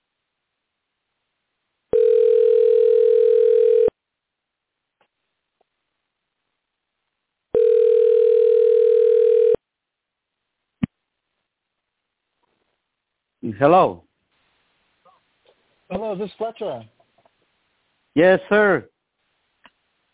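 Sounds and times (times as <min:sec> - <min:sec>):
telephone ring tone while calling a guest: 0:01.9 - 0:04.0, 0:07.5 - 0:09.6
speech: 0:13.6 - 0:14.0, 0:16.2 - 0:17.0, 0:18.2 - 0:18.9.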